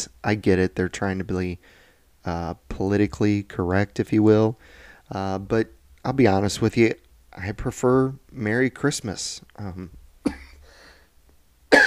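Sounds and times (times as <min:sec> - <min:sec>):
speech: 0:00.2 - 0:10.4
raspy exhale: 0:04.6 - 0:05.0, 0:10.6 - 0:11.1
person coughing sharply: 0:10.2 - 0:10.6.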